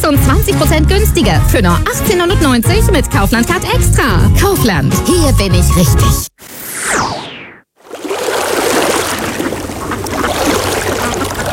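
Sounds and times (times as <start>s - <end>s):
speech: 0.0s - 6.3s
short swooping tonal sweep: 6.4s - 7.6s
rushing water: 7.8s - 11.5s.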